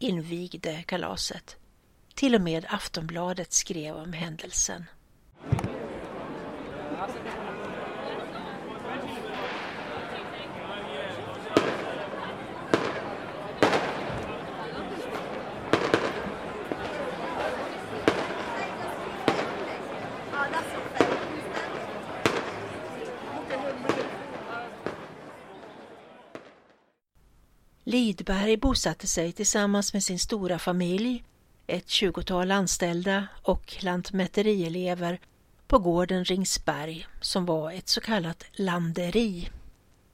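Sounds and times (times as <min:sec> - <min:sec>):
speech: 0:00.0 - 0:01.6, 0:02.2 - 0:05.6, 0:07.0 - 0:07.5, 0:28.0 - 0:39.6
crowd chattering at a celebration: 0:05.4 - 0:26.7
cannon blasts firing a salute at a celebration at Ringsberg: 0:09.3 - 0:10.3, 0:11.3 - 0:22.9, 0:23.7 - 0:25.7.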